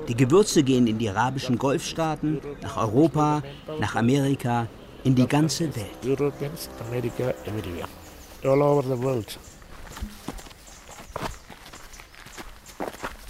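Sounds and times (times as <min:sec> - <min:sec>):
speech: 0:00.1 - 0:10.2
footsteps trudging through rough terrain: 0:07.5 - 0:13.2.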